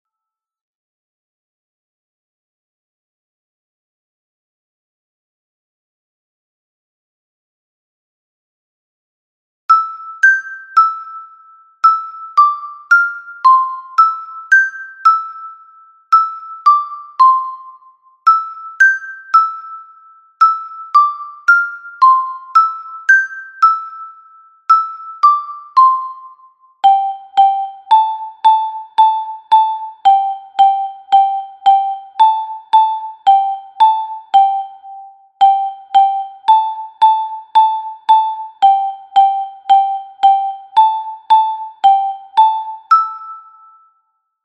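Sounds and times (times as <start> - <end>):
soprano metallophone playing a Galician folk dance tune: 9.7 - 44.0.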